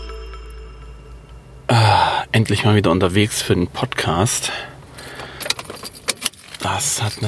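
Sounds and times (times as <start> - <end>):
speech: 1.7 - 4.7, 6.8 - 7.2
keys jingling: 4.9 - 7.2.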